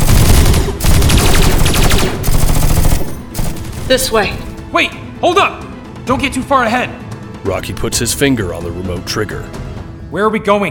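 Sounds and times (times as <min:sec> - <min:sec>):
assault rifle gunfire in a firefight in a spaceship common area: 0:00.0 - 0:04.1
speech: 0:03.9 - 0:10.6.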